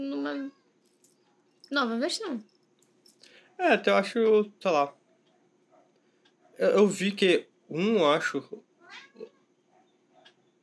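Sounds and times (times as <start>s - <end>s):
speech: 1.7s - 2.6s, 3.6s - 5.0s, 6.6s - 9.3s
cat meowing: 8.8s - 9.4s.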